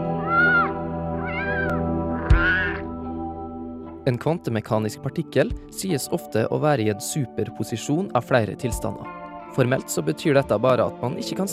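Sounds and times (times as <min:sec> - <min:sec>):
cat meowing: 0:00.2 - 0:02.9
speech: 0:04.1 - 0:11.5.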